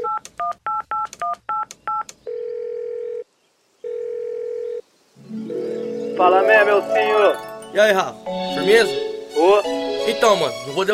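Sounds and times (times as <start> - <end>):
telephone keypad dialing beeps: 0.0 - 3.2
telephone ringing tones on the line: 0.0 - 3.2, 3.8 - 7.5
speech: 6.2 - 10.9.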